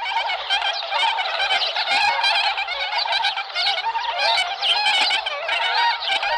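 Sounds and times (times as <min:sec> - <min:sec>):
flock of Bewick's swans honking: 0:00.0 - 0:06.3.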